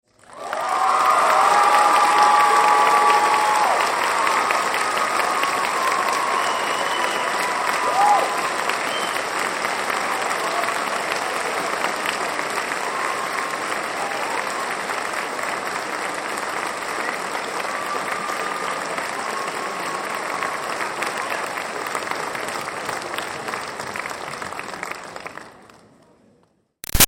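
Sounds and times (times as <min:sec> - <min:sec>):
graduation audience applauding in an auditorium: 0:00.1 - 0:26.1.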